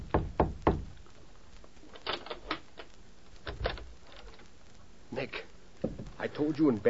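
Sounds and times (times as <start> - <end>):
soft knocking on a wooden hotel room door: 0.0 - 0.9, 5.8 - 6.1
speech: 6.2 - 6.8.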